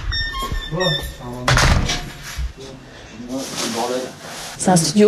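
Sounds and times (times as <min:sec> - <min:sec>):
door swinging shut with a solid thunk: 0:00.2 - 0:02.5
people chatting and exclaiming: 0:00.7 - 0:01.8, 0:02.6 - 0:05.0
speech: 0:00.7 - 0:01.9, 0:02.7 - 0:05.0.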